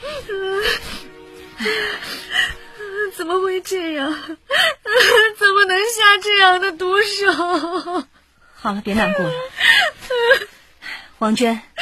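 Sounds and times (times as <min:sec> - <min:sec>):
distraught woman sobbing: 0:00.0 - 0:06.0, 0:06.8 - 0:08.2, 0:08.9 - 0:10.6
woman's catches of breath: 0:00.6 - 0:02.8
speech: 0:03.6 - 0:04.4, 0:05.0 - 0:10.5, 0:11.2 - 0:11.7.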